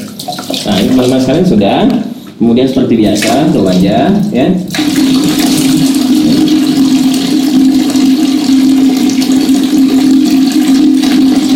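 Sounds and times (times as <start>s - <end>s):
water being scooped and poured for ablution: 0.0s - 11.5s
speech: 0.2s - 5.9s
low hum: 4.2s - 10.3s.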